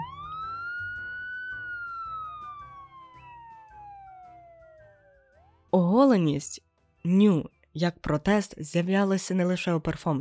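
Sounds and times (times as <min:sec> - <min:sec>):
police car siren wailing: 0:00.0 - 0:05.5
speech: 0:05.7 - 0:10.1.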